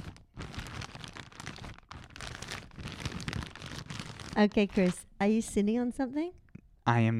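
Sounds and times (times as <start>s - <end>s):
plastic wrap being crumpled: 0.0s - 5.0s
speech: 4.4s - 7.1s.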